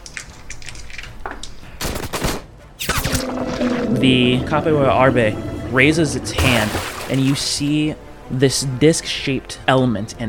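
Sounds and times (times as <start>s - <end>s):
rapid crackling gunshots as a character shoots while jumping: 1.8s - 3.2s
speech: 4.0s - 10.2s.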